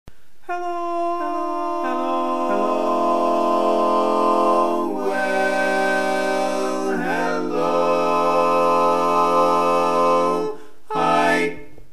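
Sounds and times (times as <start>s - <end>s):
tenor voice with chorus effect: 0.5s - 11.8s.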